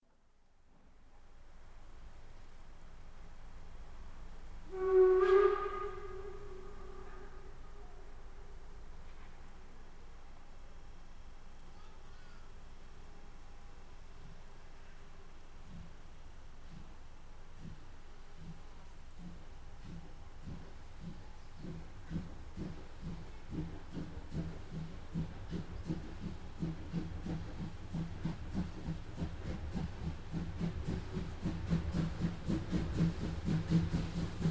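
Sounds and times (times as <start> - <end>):
class 64 tank steam locomotive departing: 3.9 - 10.6, 13.0 - 34.5.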